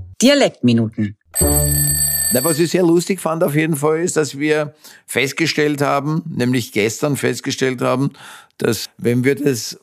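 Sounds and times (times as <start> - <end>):
speech: 0.2 - 9.8
mobile phone alarm ringing: 1.4 - 2.9.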